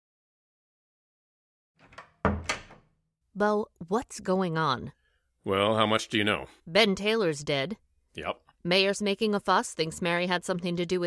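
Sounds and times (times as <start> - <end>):
bedroom door swinging shut and latching: 1.8 - 2.9
speech: 3.4 - 11.0.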